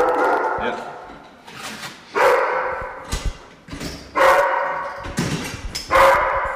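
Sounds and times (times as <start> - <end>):
several dogs barking and yelping: 0.0 - 1.1, 2.1 - 3.1, 4.1 - 5.1, 5.8 - 6.5.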